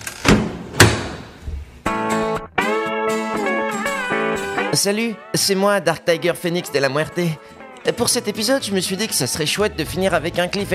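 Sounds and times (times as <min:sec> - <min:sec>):
door slamming shut: 0:00.1 - 0:01.4
tonal music: 0:01.9 - 0:10.2
speech: 0:04.8 - 0:10.7.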